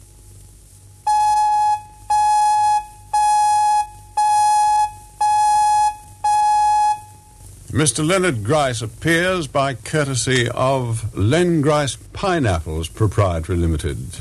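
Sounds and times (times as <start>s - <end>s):
faint hum: 0.0s - 14.2s
radio time signal electronic beeps: 1.1s - 7.4s
speech: 7.8s - 14.2s.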